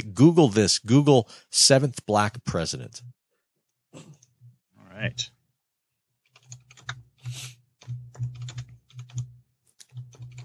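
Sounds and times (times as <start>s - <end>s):
speech: 0.0s - 3.2s, 5.0s - 5.4s
typing on a computer keyboard: 6.3s - 10.4s.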